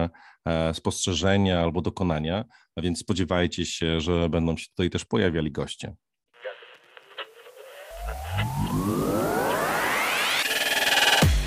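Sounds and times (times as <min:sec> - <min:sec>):
speech: 0:00.0 - 0:06.1
crackling radio static and interference: 0:06.4 - 0:11.2
warbling electronic tone sweeping upward: 0:07.5 - 0:11.3.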